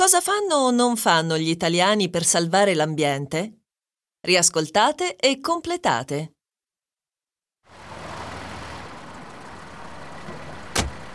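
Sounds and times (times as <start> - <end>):
speech: 0.0 - 3.6, 4.2 - 6.4
car engine idling: 7.7 - 11.1.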